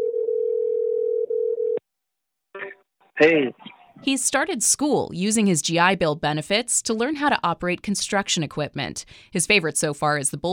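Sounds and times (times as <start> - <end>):
telephone line tone while a call is placed: 0.0 - 1.8
speech: 3.2 - 10.5.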